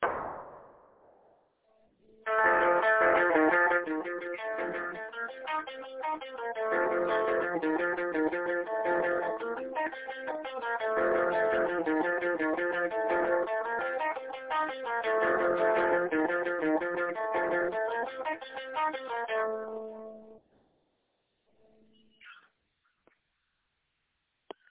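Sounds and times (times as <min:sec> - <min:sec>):
jig-like rock music: 0:02.3 - 0:19.8.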